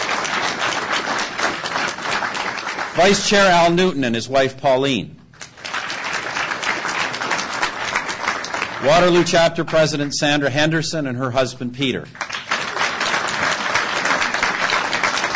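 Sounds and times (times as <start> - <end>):
crowd applause of many hands clapping: 0.0 - 3.8, 5.4 - 10.5, 12.2 - 15.3
speech: 3.0 - 5.2, 8.8 - 12.3
man announcing names through a loudspeaker: 3.0 - 5.3, 8.8 - 12.2.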